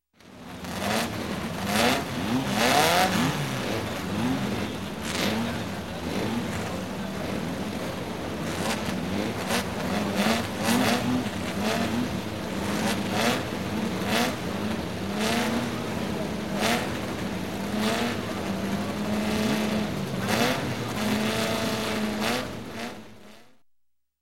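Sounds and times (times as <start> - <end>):
several dune buggies revving up: 0.2 - 23.6.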